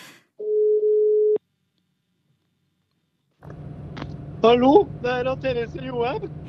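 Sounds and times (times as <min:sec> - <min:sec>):
noisy phone line pickup: 0:00.4 - 0:01.4
telephone ringing tone: 0:00.4 - 0:01.4
speech: 0:04.4 - 0:06.4.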